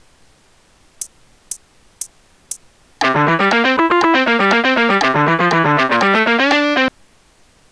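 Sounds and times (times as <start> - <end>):
guitar playing a C Mixolydian scale run: 3.0 - 6.9.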